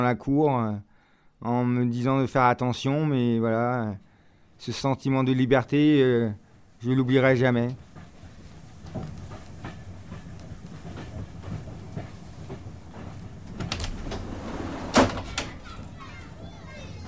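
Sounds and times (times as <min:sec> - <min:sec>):
speech: 0:00.0 - 0:07.9
moving train carriage low rumble: 0:06.8 - 0:17.0.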